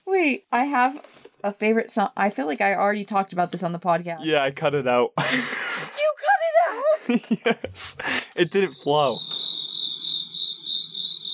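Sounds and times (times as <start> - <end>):
speech: 0.2 - 5.7, 7.1 - 9.5
laughter: 5.2 - 6.0, 6.7 - 9.1
cricket chirping: 8.0 - 11.3.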